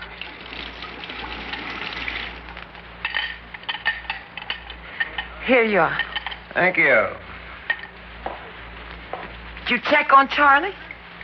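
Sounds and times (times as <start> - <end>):
water pouring into a glass: 0.0 - 2.6
speech: 5.5 - 7.2, 9.7 - 10.8.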